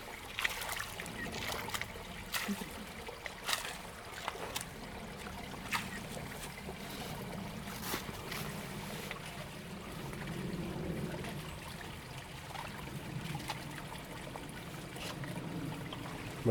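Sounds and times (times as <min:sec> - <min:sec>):
small creek trickling and gurgling past cleared leaf debris: 0:00.0 - 0:16.4
sharp splashes and clicks: 0:00.2 - 0:07.2, 0:12.3 - 0:16.1
speech: 0:02.5 - 0:02.7.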